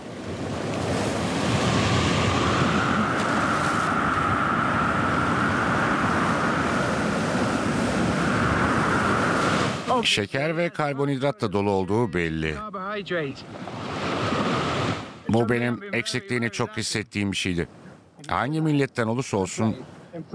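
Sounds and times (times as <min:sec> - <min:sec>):
wind buffeting the microphone: 0:00.0 - 0:09.9
sea surf washing in: 0:00.0 - 0:11.2, 0:13.2 - 0:16.8, 0:17.4 - 0:20.3
speech: 0:10.0 - 0:13.8, 0:15.3 - 0:20.3.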